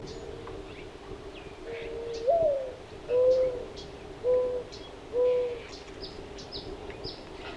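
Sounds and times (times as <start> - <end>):
mourning dove: 0.0 - 0.8, 1.6 - 5.8.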